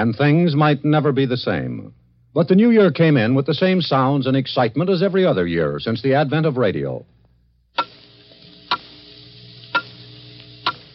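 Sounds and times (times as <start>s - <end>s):
speech: 0.0s - 7.1s
faint steady hum: 0.0s - 10.9s
clock ticking: 7.8s - 8.0s, 8.7s - 8.9s, 9.7s - 9.9s, 10.6s - 10.9s.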